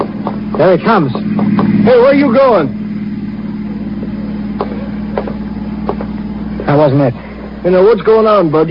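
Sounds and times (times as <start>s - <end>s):
car engine rumbling outside: 0.0s - 8.6s
speech: 0.6s - 2.8s, 6.7s - 8.6s.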